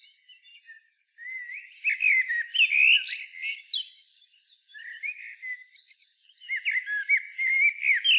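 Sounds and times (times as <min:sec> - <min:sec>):
common blackbird singing: 0:00.0 - 0:04.0, 0:04.6 - 0:08.1.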